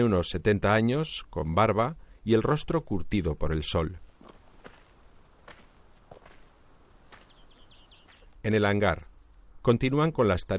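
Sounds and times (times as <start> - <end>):
speech: 0.0 - 4.1, 8.4 - 10.5
steady hiss: 0.0 - 10.5
footsteps of an elderly man walking through an olive grove: 4.0 - 8.4
faint bird chirps: 6.8 - 9.8.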